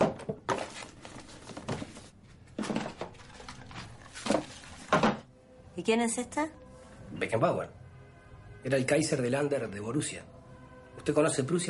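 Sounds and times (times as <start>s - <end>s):
rummaging through drawers and desks in a bedroom during a search: 0.0s - 5.3s
speech: 5.8s - 6.6s, 7.2s - 7.8s, 8.6s - 10.4s, 11.0s - 11.6s.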